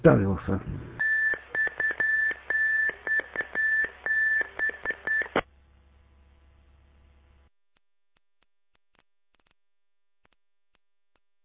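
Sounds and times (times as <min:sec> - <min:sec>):
speech: 0:00.0 - 0:01.0
electronic beeps on a conference call line: 0:01.0 - 0:05.4.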